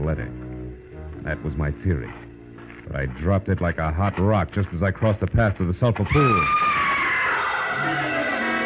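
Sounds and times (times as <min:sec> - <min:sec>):
speech: 0:00.0 - 0:00.5, 0:01.2 - 0:02.2, 0:02.9 - 0:06.6
person screaming: 0:06.3 - 0:08.5.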